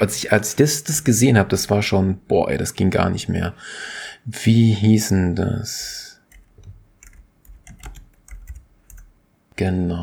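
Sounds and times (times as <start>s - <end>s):
speech: 0.0s - 6.0s, 9.6s - 10.0s
rapid computer keyboard typing: 6.3s - 9.1s.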